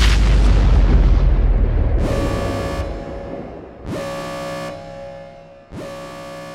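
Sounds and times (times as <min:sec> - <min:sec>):
heavy rumbling explosion from an attack on a space station: 0:00.0 - 0:04.3
loud blaring horn-like blasts: 0:02.0 - 0:06.5.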